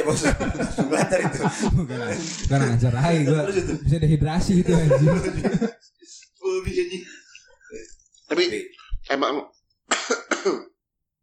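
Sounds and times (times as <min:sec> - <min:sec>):
laughter: 0:00.0 - 0:03.9, 0:04.5 - 0:08.0
speech: 0:00.0 - 0:09.6, 0:10.4 - 0:10.7
person coughing harshly: 0:09.9 - 0:10.8.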